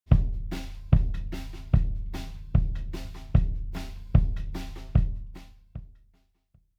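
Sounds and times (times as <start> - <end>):
kick drum: 0.0 - 6.7.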